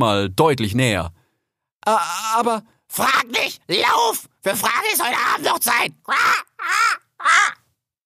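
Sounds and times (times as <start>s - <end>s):
speech: 0.0s - 1.2s, 1.8s - 7.6s
crow cawing harshly: 6.1s - 7.6s.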